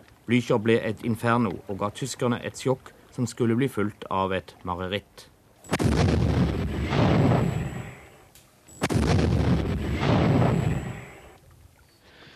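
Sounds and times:
speech: 0:00.3 - 0:06.2
heavy coastal artillery cannon shots fired at a warship: 0:05.7 - 0:11.4.

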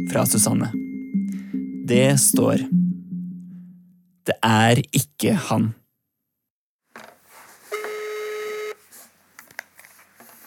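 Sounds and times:
speech: 0:00.0 - 0:00.8, 0:01.9 - 0:02.8, 0:04.2 - 0:05.8
telephone dialing tone beep: 0:07.8 - 0:08.8.

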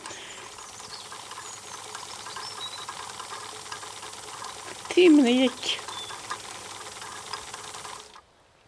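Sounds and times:
sewing machine whirring: 0:00.0 - 0:08.2
speech: 0:05.0 - 0:05.9.

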